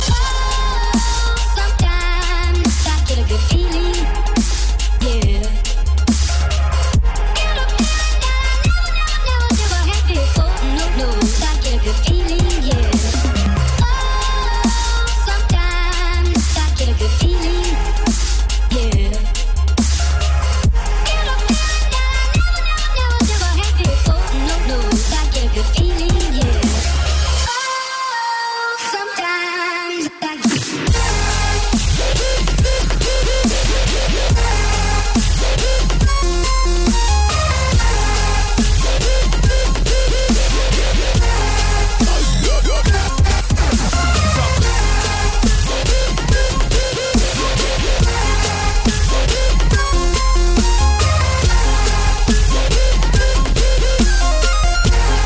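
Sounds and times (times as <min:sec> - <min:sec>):
Punjabi dubstep remix: 0:00.0 - 0:55.2.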